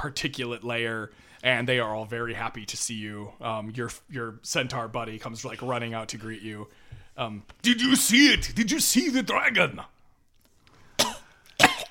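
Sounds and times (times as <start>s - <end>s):
speech: 0.0s - 10.0s
sharp coughs: 11.0s - 11.8s.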